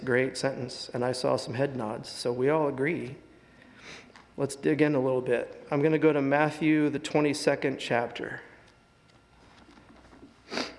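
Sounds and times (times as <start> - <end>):
speech: 0.0 - 3.2, 3.8 - 8.5
person sniffling: 3.8 - 4.1, 10.4 - 10.7.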